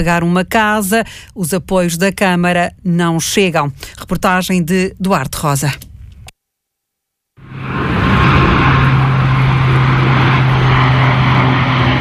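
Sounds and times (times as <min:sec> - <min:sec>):
speech: 0:00.0 - 0:05.9
aircraft roar overhead: 0:07.4 - 0:11.9.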